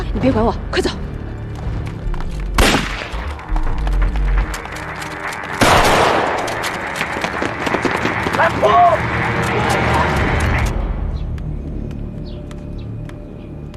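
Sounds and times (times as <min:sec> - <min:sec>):
speech: 0:00.1 - 0:01.1
dense burst of crackling noise: 0:01.6 - 0:12.5
gunshots in a small side street: 0:02.5 - 0:03.3, 0:05.5 - 0:10.6.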